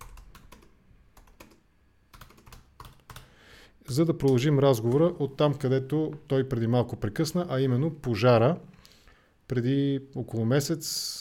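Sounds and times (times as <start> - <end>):
typing on a computer keyboard: 0.0 - 3.3
speech: 3.9 - 8.7, 9.5 - 11.1.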